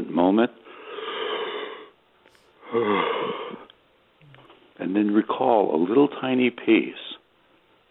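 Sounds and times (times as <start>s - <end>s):
speech: 0.3s - 0.7s, 2.7s - 3.6s, 4.8s - 7.1s
person yawning: 2.4s - 3.7s.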